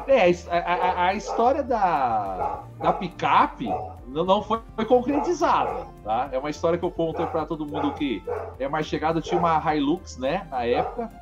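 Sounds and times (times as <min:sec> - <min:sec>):
dog barking: 0:00.0 - 0:04.0, 0:04.9 - 0:06.3, 0:07.0 - 0:09.6, 0:10.6 - 0:11.2
speech: 0:00.0 - 0:11.2.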